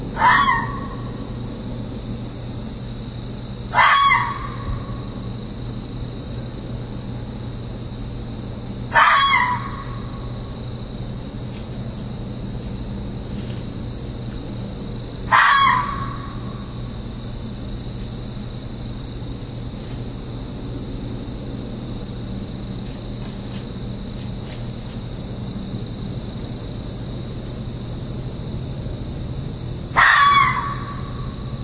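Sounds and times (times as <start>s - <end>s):
calls in the early morning hours: 0.2s - 1.2s, 3.8s - 4.8s, 9.0s - 10.1s, 15.3s - 16.4s, 30.0s - 31.5s.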